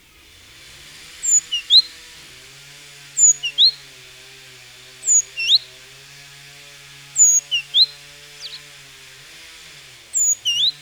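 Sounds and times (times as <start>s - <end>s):
Great tit Parus major giving a repeated three-note phrase: 3.2s - 3.8s, 5.1s - 5.6s, 7.2s - 8.6s, 10.2s - 10.8s.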